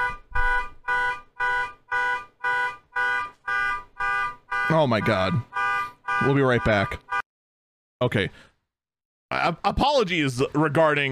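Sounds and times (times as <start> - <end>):
car alarm blaring outside a window: 0.0 - 7.2
speech: 4.7 - 5.6, 6.2 - 7.0, 8.0 - 8.5, 9.3 - 11.1.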